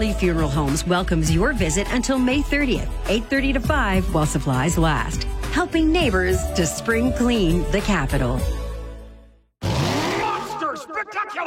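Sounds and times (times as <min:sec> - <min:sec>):
speech: 0:00.0 - 0:08.6
monster truck engine revving: 0:09.6 - 0:10.6
monster truck tires screeching: 0:09.6 - 0:10.8.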